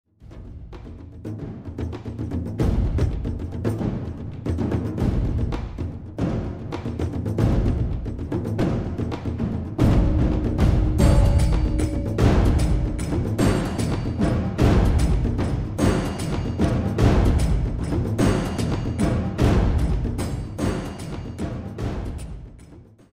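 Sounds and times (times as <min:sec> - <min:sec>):
enhanced percussion: 0:00.2 - 0:23.1.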